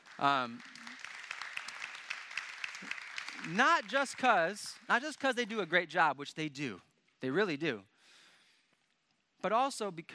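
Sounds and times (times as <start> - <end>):
crowd applauding with dense rapid clapping: 0.0 - 5.9
speech: 0.2 - 0.8, 2.8 - 7.9, 9.4 - 10.1.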